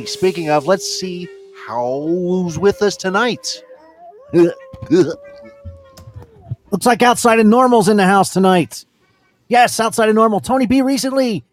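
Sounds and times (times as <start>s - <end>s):
speech: 0.0s - 3.7s, 4.3s - 5.3s, 6.7s - 8.9s, 9.5s - 11.5s
person imitating a wolf howl: 0.0s - 6.7s.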